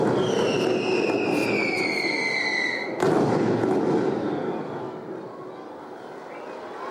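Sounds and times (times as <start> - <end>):
fireworks exploding: 0.0 - 5.4.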